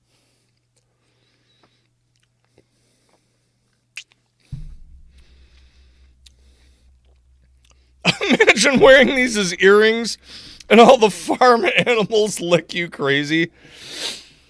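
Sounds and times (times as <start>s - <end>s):
person chewing a hard salty carrot lick treat: 2.0s - 3.1s
speech: 8.6s - 14.2s.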